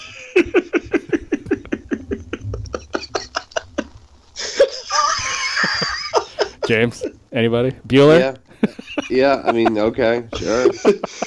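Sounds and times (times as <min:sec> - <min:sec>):
laughter: 0:00.0 - 0:07.2, 0:08.4 - 0:11.2
woman screaming: 0:04.8 - 0:05.8
speech: 0:06.7 - 0:11.2.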